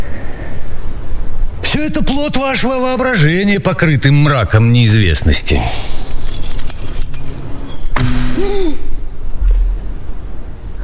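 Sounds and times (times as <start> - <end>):
speech: 1.8 - 6.0
bunch of keys thrown down onto the floor, jangling: 5.9 - 8.7.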